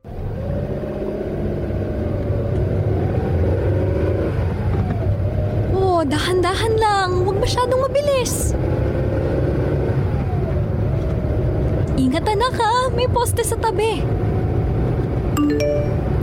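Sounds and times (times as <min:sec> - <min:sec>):
car engine rumbling while accelerating: 0:00.0 - 0:16.2
speech: 0:06.1 - 0:08.8, 0:12.1 - 0:14.2
phone notification two-note chime: 0:15.4 - 0:16.2.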